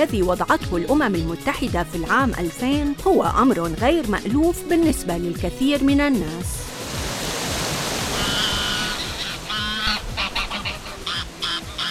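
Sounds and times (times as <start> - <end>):
speech: 0.0 - 6.7
Wazzani River rushing at a riverbank: 6.6 - 11.8
geese or ducks honking: 8.1 - 11.8.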